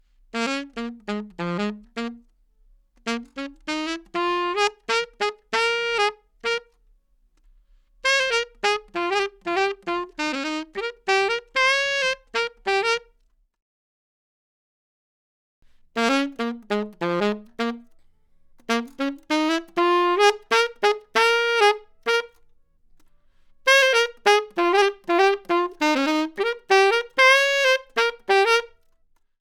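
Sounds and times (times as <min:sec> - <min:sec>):
saxophone: 0:00.3 - 0:02.3, 0:03.0 - 0:06.8, 0:08.0 - 0:13.2, 0:15.8 - 0:22.5, 0:23.6 - 0:28.8.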